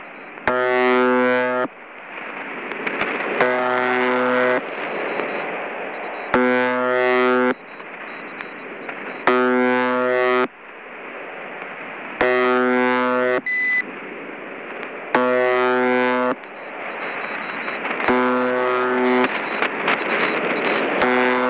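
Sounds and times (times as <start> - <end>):
Russian buzzer signal on 7 MHz AM: 0.0 - 1.7, 3.4 - 10.6, 12.2 - 13.9, 15.2 - 21.4.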